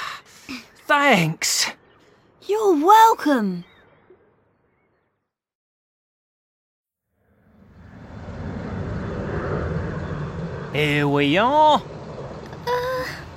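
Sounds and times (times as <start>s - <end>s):
speech: 0.9s - 1.5s, 2.5s - 3.7s, 10.8s - 11.9s
airport bus engine rumbling as it pulls up: 7.7s - 13.3s.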